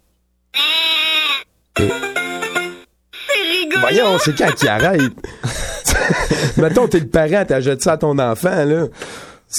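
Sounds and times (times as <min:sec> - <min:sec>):
pig-sheep hybrid animal bleating in a video game: 0:00.5 - 0:02.1
speech: 0:01.8 - 0:02.1, 0:03.8 - 0:09.5
laughter: 0:03.8 - 0:06.8.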